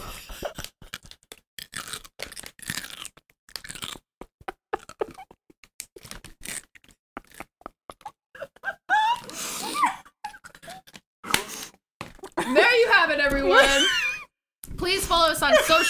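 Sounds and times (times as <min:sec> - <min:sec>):
crunching on pickles, cucumbers fermented in vinegar: 0:02.8 - 0:04.0
laughter: 0:12.4 - 0:14.2, 0:14.8 - 0:15.8.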